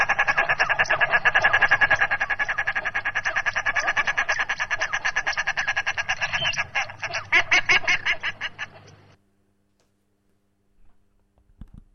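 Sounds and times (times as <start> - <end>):
common shelduck cackling: 0.0 - 9.2.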